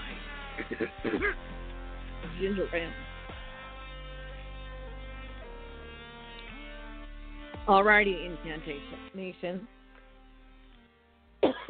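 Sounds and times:
person coughing from food stuck in throat: 0.6s - 1.4s, 11.4s - 11.6s
speech: 0.7s - 1.6s, 2.2s - 3.1s, 7.7s - 9.8s.

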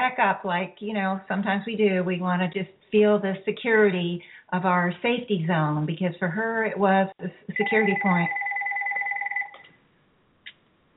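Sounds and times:
speech: 0.1s - 8.5s
phone ringing with electronic two-tone trill: 7.6s - 9.6s.

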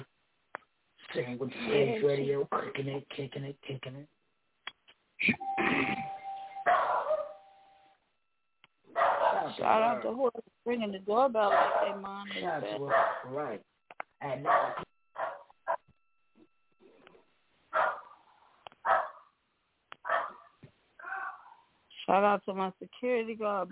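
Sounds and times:
speech: 1.2s - 4.2s, 5.2s - 6.0s, 9.5s - 14.9s, 22.1s - 23.7s
doorbell chime ringing: 5.4s - 8.0s
dog barking: 6.7s - 7.4s, 8.9s - 9.6s, 11.5s - 12.0s, 12.9s - 13.4s, 14.4s - 15.8s, 17.7s - 18.2s, 18.8s - 19.3s, 20.0s - 21.6s.

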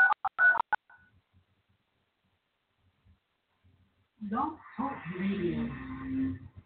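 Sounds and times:
telephone touch-tone dialing beeps: 0.0s - 1.0s
person speaking: 4.2s - 6.6s.

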